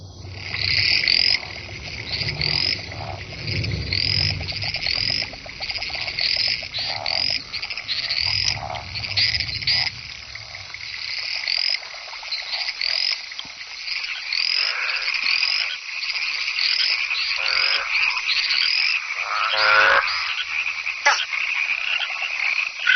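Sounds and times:
low rumble: 0:00.0 - 0:12.5
chorus of frogs giving courtship calls at night: 0:00.0 - 0:22.9.

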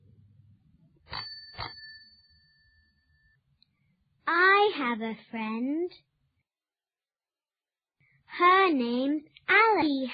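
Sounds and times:
bicycle bell ringing: 0:01.1 - 0:03.4
speech: 0:04.8 - 0:06.1, 0:08.4 - 0:10.1.

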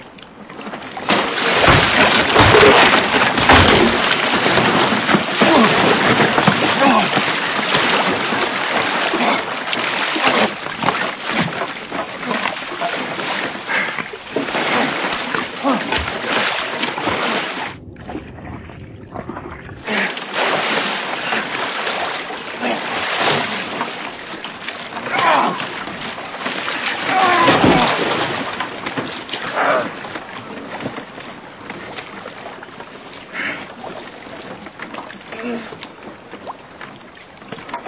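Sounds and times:
water splashing and sloshing: 0:00.1 - 0:37.8.

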